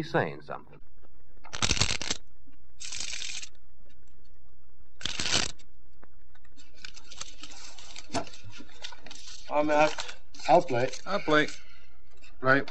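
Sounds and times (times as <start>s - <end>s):
speech: 0.0s - 0.8s, 9.5s - 11.6s, 12.4s - 12.6s
playing cards being shuffled: 1.5s - 2.2s, 2.8s - 4.3s, 4.9s - 12.4s
soft card handling noise: 2.8s - 4.2s, 5.0s - 5.7s, 6.3s - 12.4s.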